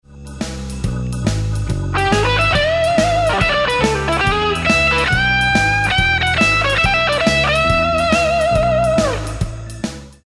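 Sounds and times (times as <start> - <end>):
guitar lick: 0.8 - 9.9.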